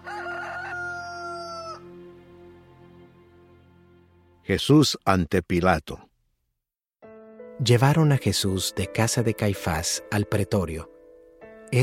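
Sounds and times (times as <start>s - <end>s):
rooster crowing: 0.0s - 2.0s
speech: 4.5s - 6.1s, 7.6s - 10.9s.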